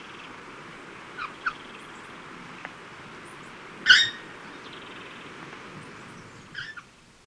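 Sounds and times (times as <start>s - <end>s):
noisy hiss: 0.0s - 7.2s
red-faced parrot squawking: 3.8s - 4.2s, 6.6s - 6.8s.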